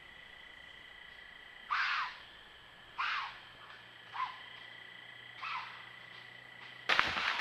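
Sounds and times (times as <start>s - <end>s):
faint steady hiss: 0.0s - 7.3s
deer screaming: 1.7s - 2.2s, 3.0s - 3.4s, 5.4s - 5.8s.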